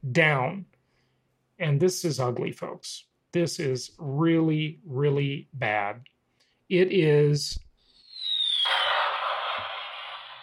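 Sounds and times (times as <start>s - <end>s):
speech: 0.2s - 0.7s, 1.6s - 6.1s, 6.7s - 7.6s
bomb-drop sound effect whistle: 8.0s - 10.4s
bomb-drop sound effect explosion with crackling roar: 8.2s - 10.4s.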